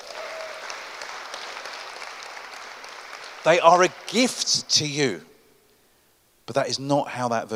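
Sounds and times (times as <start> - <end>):
room full of people applauding: 0.0 - 4.9
speech: 3.4 - 5.3, 6.5 - 7.5.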